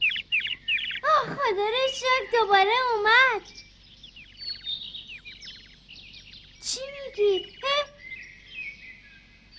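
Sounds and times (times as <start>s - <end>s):
pet bird chirping: 0.0s - 9.5s
speech: 1.5s - 3.6s, 6.8s - 7.9s.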